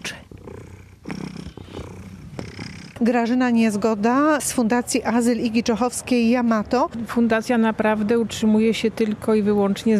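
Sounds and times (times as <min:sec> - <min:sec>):
heavy cat purring while being held: 0:00.0 - 0:07.0
speech: 0:03.0 - 0:09.9.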